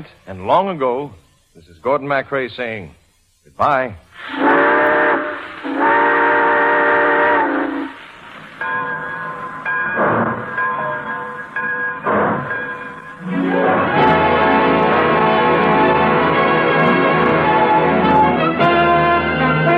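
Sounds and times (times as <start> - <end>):
speech: 0.0 - 5.0
steam train whistle blasts: 4.2 - 19.7.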